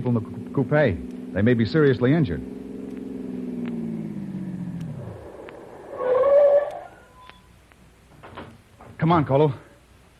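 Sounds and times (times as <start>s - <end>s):
speech: 0.0s - 2.6s, 9.0s - 9.7s
car engine driving off: 0.0s - 7.3s.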